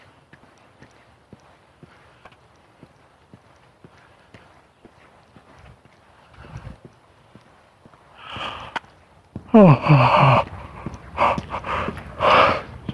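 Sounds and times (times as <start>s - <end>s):
footsteps crunching: 0.0s - 12.9s
person yawning: 9.5s - 10.5s
speech: 9.5s - 10.5s.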